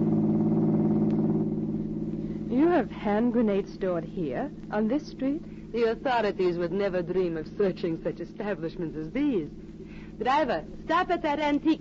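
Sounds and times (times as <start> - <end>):
large black car engine humming on a business street: 0.0 - 3.5
speech: 2.8 - 11.7.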